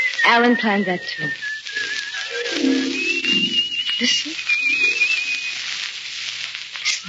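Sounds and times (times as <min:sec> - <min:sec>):
person whistling a thin wavering tune: 0:00.0 - 0:05.8
speech: 0:00.3 - 0:01.5, 0:02.6 - 0:03.0, 0:04.0 - 0:04.9.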